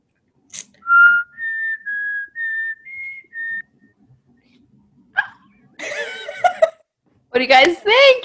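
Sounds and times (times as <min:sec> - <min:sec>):
person whistling a TV theme tune: 0:00.9 - 0:03.7
speech: 0:07.4 - 0:08.2.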